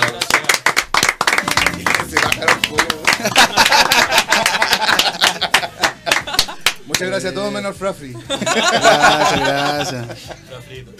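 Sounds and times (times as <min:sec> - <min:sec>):
small group of people clapping: 0:00.0 - 0:07.2
laughter: 0:01.4 - 0:06.9, 0:08.1 - 0:10.4
speech: 0:07.2 - 0:10.9.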